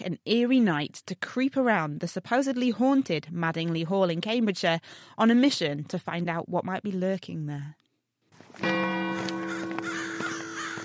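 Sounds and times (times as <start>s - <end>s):
speech: 0.1s - 7.8s, 8.6s - 8.9s
crows cawing: 9.1s - 10.8s.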